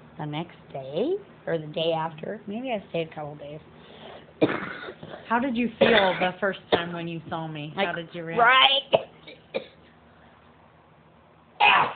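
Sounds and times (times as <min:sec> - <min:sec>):
speech: 0:00.2 - 0:09.7
sneezes: 0:04.4 - 0:06.3, 0:11.6 - 0:11.9.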